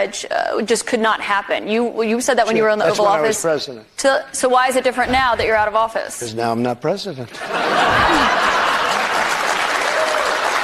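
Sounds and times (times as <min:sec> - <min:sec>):
speech: 0:00.0 - 0:08.5
studio audience laughing: 0:07.3 - 0:09.7
studio audience applauding: 0:07.8 - 0:10.6.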